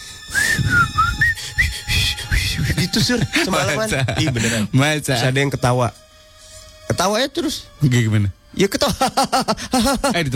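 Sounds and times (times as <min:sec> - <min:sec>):
person whistling: 0:00.3 - 0:02.8
laughter: 0:02.6 - 0:04.8, 0:08.8 - 0:10.3
speech: 0:02.9 - 0:06.1, 0:07.0 - 0:10.3.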